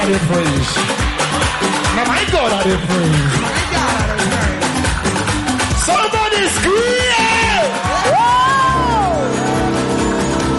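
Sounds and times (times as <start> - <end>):
large crowd screaming and cheering: 0.0 - 10.5
speech: 0.1 - 4.4, 5.9 - 8.1
high whoops and shouts: 6.8 - 10.0.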